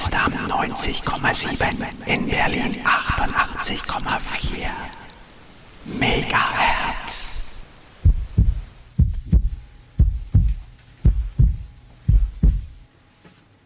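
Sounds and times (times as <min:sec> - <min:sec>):
short wash of hissy noise: 0:00.0 - 0:09.6
speech: 0:00.6 - 0:05.0, 0:05.8 - 0:07.0
steady heartbeat thumping in lub-dub pairs: 0:08.0 - 0:12.9.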